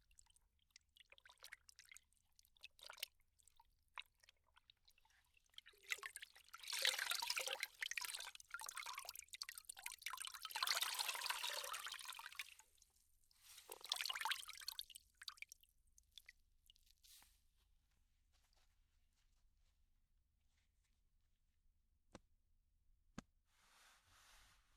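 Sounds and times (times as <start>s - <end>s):
towel dipped into hot water: 0.1s - 17.0s.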